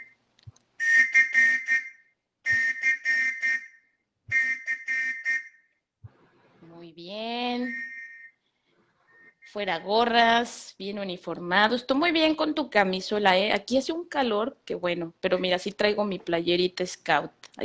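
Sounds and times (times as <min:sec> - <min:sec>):
loud trilling whistle blasts: 0:00.8 - 0:05.7, 0:07.6 - 0:08.4, 0:09.0 - 0:09.7
speech: 0:09.5 - 0:17.6.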